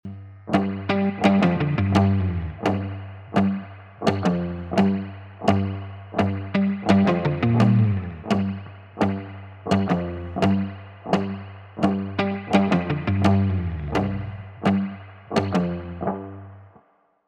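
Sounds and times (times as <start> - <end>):
guitar bus: 0.0 - 16.8.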